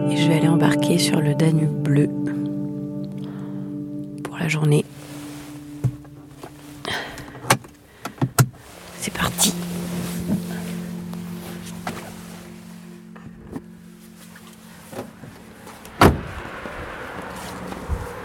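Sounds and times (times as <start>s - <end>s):
speech: 0.0s - 2.4s, 4.4s - 4.9s
fishing boat diesel engines idling at a quay in Le Guilvinec: 4.3s - 16.0s
clunks and knocks: 7.4s - 8.6s.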